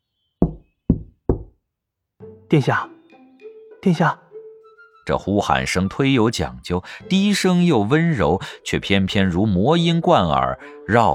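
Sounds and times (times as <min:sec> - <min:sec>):
sharp knocks on a wooden door: 0:00.4 - 0:01.5
speech: 0:02.5 - 0:02.9, 0:03.8 - 0:04.2, 0:05.1 - 0:11.1.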